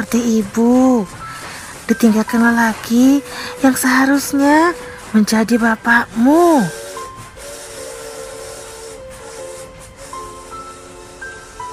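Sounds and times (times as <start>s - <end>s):
speech: 0.0s - 1.2s, 1.9s - 6.8s
steam train hissing with a continuous rush of steam: 0.0s - 11.7s
steam train whistle blasts: 6.4s - 11.7s.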